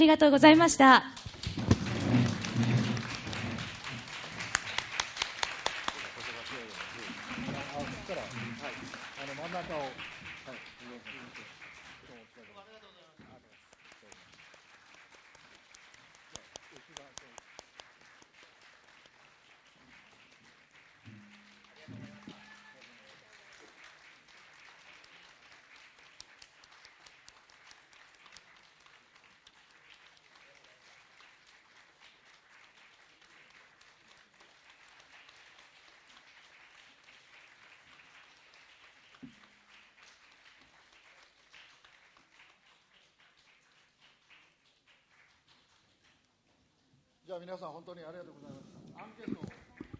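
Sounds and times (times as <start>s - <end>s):
speech: 0.0s - 1.3s, 47.4s - 49.5s
crowd applauding election candidates leaving the venue: 0.0s - 46.1s, 48.2s - 49.9s
scattered sharp claps: 0.0s - 46.3s.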